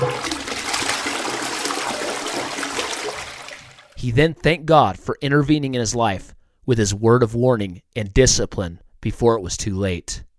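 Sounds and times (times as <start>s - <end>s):
toilet flushing: 0.0s - 4.0s
speech: 4.0s - 10.3s.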